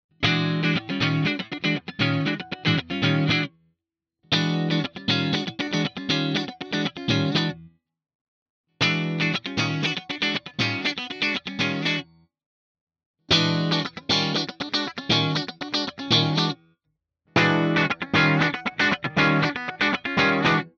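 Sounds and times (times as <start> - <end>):
clean funk guitar in all positions: 0.2 - 3.5, 4.3 - 7.7, 8.8 - 12.1, 13.3 - 16.6, 17.4 - 20.7.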